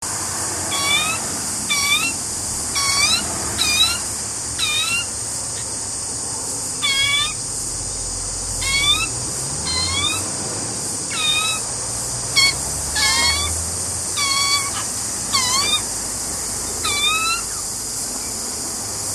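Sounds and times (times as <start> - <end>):
butcherbird calling for food: 0.7 - 5.8, 6.8 - 7.4, 8.6 - 10.3, 11.1 - 11.7, 12.3 - 15.9, 16.8 - 18.4.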